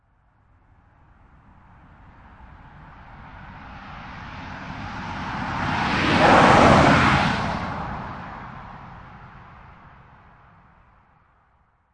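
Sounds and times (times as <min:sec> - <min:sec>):
car passing by at 45mph on dry road: 0:02.4 - 0:10.6.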